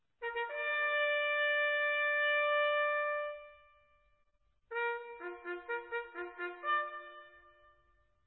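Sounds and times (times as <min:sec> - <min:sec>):
regiment bugle playing: 0:00.2 - 0:03.6, 0:04.7 - 0:07.6.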